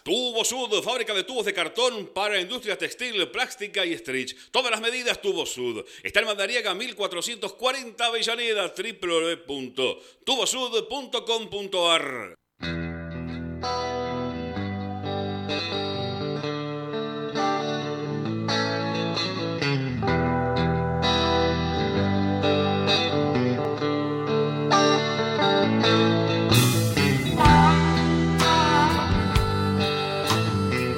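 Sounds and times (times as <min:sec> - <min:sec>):
speech: 0:00.0 - 0:12.8
Argentine rock nacional music with distorted electric guitars and bass: 0:12.6 - 0:30.9.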